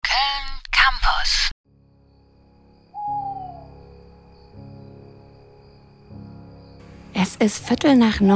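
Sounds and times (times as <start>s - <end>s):
speech: 0.2s - 1.6s, 7.2s - 8.3s
faint steady drone: 1.7s - 8.3s
owls hooting: 2.9s - 4.1s.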